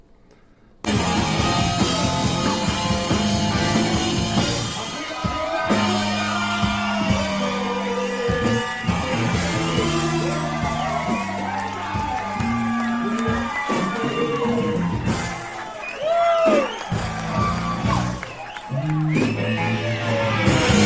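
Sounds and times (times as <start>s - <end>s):
dense loud crowd roaring: 0.8s - 20.8s
whoops and rising yells: 4.6s - 20.8s.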